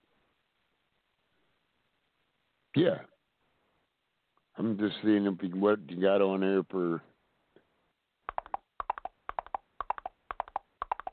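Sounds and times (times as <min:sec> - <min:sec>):
speech: 0:02.8 - 0:03.1, 0:04.6 - 0:07.1
horse hooves clip-clopping: 0:08.3 - 0:11.1.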